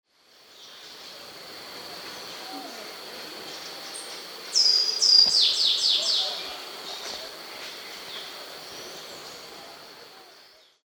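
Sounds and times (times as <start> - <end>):
white eared ground sparrow calling: 2.2 - 9.6.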